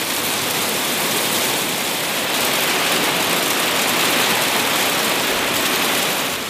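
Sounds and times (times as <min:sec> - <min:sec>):
heavy hailstorm: 0:00.0 - 0:06.4.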